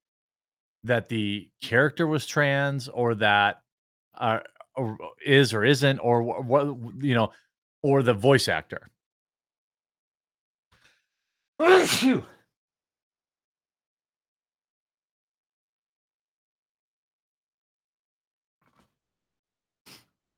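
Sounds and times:
speech: 0.8 - 3.6, 4.2 - 9.0, 11.6 - 12.3
loud sneeze: 11.6 - 12.4.

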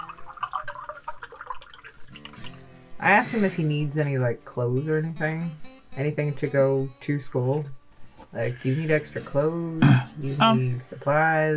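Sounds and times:
whiskey pouring into a glass: 0.0 - 2.6
speech: 3.0 - 11.5.

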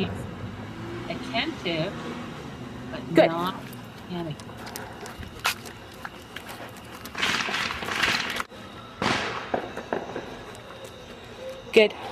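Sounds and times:
speech: 0.0 - 0.2, 1.4 - 2.2, 2.9 - 4.6, 11.8 - 12.1
steady outdoor noise: 0.0 - 12.1
fireworks exploding with sharp cracks and crackling: 7.1 - 10.4.

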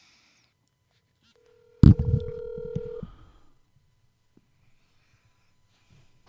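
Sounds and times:
phone electronic tone while unlocking: 1.4 - 3.4.

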